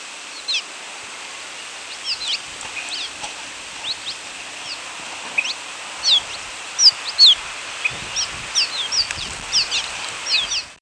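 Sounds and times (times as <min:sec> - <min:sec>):
hissing background: 0:00.0 - 0:10.8
cave swallow calls: 0:00.3 - 0:00.6, 0:01.8 - 0:03.2, 0:03.8 - 0:04.8, 0:05.4 - 0:10.7.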